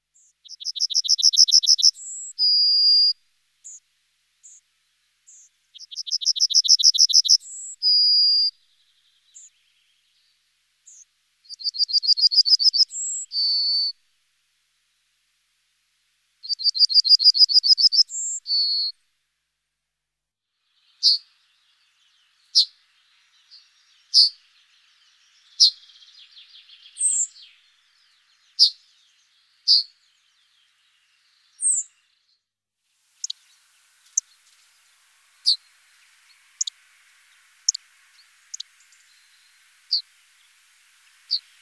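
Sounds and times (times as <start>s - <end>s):
yellowhammer singing: 0.2s - 3.8s, 5.3s - 14.0s, 16.4s - 19.0s, 20.6s - 32.4s, 33.2s - 41.5s.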